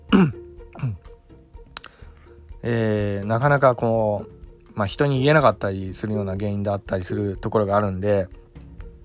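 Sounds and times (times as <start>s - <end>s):
breathy rasps: 0.0s - 1.1s, 1.8s - 2.4s
throat-clearing coughs: 0.1s - 1.0s
speech: 2.6s - 8.4s.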